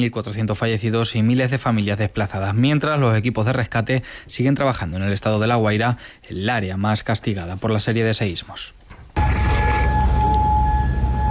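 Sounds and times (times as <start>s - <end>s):
speech: 0.0s - 8.8s
air raid sirens in Kuwait after a missile and drone attack: 9.2s - 11.2s.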